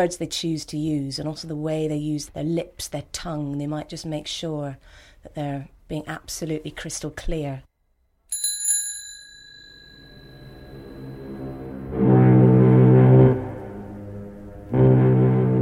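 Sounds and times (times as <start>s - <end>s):
speech: 0.0s - 7.7s
bicycle bell ringing: 8.3s - 11.3s
deep horn-like blasts: 10.8s - 15.5s.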